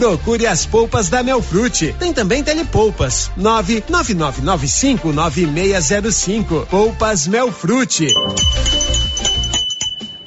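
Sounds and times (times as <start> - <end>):
speech: 0.0 - 9.0
doorbell-like chime: 8.1 - 10.2.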